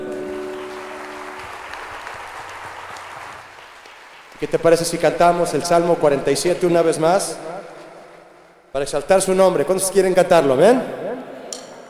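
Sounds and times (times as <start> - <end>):
church audience applauding at a Christian worship service: 0.0 - 5.4
speech: 4.4 - 7.5, 8.7 - 11.0.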